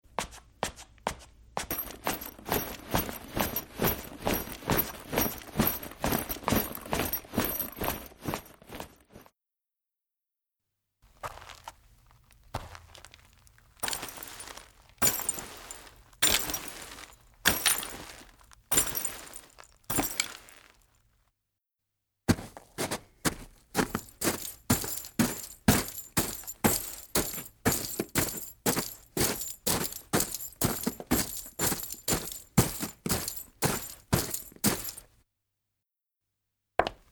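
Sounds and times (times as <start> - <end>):
footsteps: 0.2 - 9.3, 13.8 - 20.8, 22.3 - 35.1
clothes rustling: 1.7 - 9.3, 13.8 - 20.8, 23.8 - 35.1.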